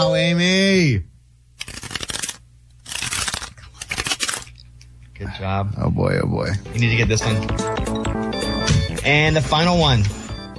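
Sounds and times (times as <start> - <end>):
speech: 0.0 - 1.1, 5.2 - 8.3, 9.0 - 10.2
deck of playing cards being riffle shuffled: 1.6 - 4.7.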